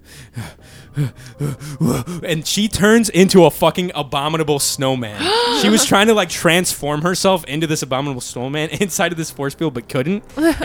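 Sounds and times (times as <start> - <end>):
voice imitating heavy panting: 0.1 - 2.3, 5.2 - 6.0
speech: 0.4 - 10.6.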